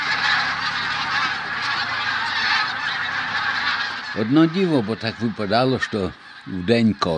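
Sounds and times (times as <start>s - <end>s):
huge flock of geese landing in spring, honking and calling: 0.0s - 7.1s
speech: 4.2s - 7.1s.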